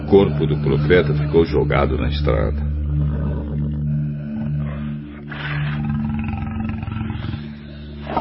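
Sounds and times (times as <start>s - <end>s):
speech: 0.1s - 2.8s
lion roaring: 2.9s - 8.1s.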